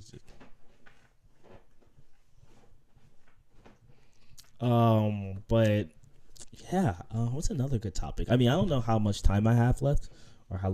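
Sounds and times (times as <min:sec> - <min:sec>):
chair creaking and knocking: 0:00.2 - 0:04.0
speech: 0:04.6 - 0:06.0, 0:06.6 - 0:10.7.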